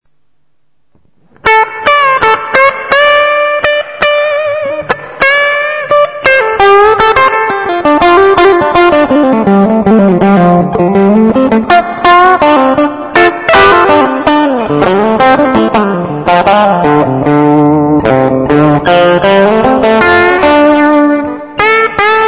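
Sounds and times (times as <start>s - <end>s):
clean electric guitar lead on bridge humbucker pickup: 1.2s - 22.2s.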